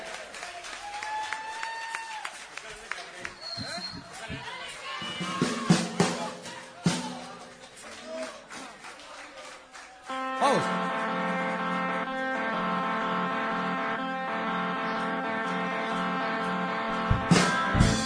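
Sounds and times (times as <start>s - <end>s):
audience clapping: 0.0s - 13.6s, 14.7s - 18.0s
people talking and calling out: 3.2s - 10.9s
whistle-like tones: 3.3s - 4.2s.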